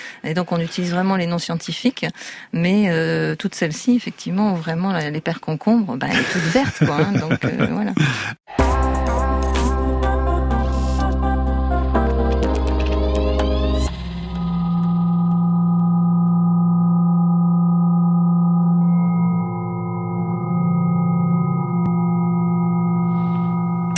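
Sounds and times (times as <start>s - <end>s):
speech: 0.2s - 8.6s
laughter: 6.1s - 8.4s
synthesized music from spider web vibrations with drones and whistling pitches: 8.6s - 23.9s.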